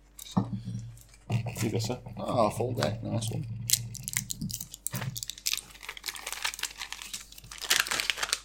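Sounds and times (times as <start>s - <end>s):
speech: 1.6s - 3.6s
ibuprofen pills popping out of a blister pack: 3.7s - 8.4s
foil blister pack of ibuprofen crinkling as pills are pushed out: 3.9s - 8.4s.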